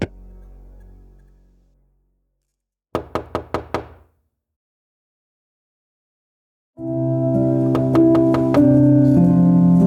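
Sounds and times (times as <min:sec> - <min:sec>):
music: 0:00.0 - 0:02.3, 0:06.8 - 0:09.8
firm knocks on a door: 0:03.0 - 0:04.1, 0:07.8 - 0:08.6.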